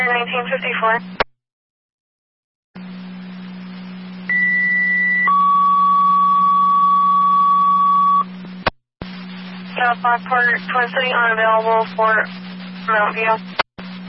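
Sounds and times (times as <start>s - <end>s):
radio hiss and hum: 0.0s - 1.3s, 2.8s - 5.4s, 8.1s - 14.0s
speech: 0.2s - 1.2s, 9.8s - 13.6s
fire dispatch pager tones: 4.3s - 8.2s.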